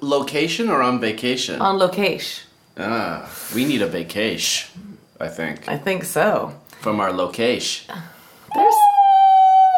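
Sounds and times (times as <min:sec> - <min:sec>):
speech: 0:00.1 - 0:08.9
person imitating a dog howl: 0:08.5 - 0:09.7.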